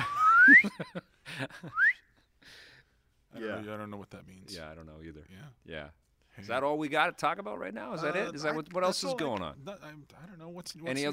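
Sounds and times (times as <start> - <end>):
upward-sliding whistle glides whistled by mouth: 0.0 - 0.7, 1.7 - 2.2
speech: 0.5 - 2.0, 3.3 - 11.1.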